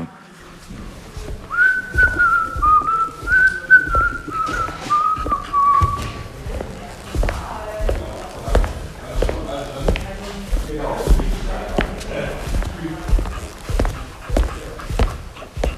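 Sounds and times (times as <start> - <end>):
steady rhythmic thumps: 0.0 - 15.7
person whistling a melody: 1.5 - 6.0.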